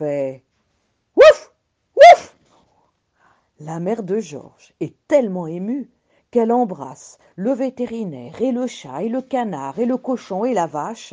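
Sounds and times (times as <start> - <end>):
speech: 0.0 - 0.5, 3.6 - 11.1
dog barking: 1.2 - 2.3.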